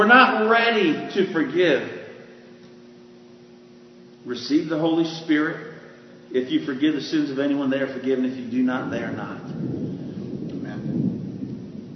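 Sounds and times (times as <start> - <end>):
speech: 0.0 - 2.0, 4.2 - 5.7, 6.3 - 9.9
low rolling thunder from a storm outside: 8.6 - 11.9.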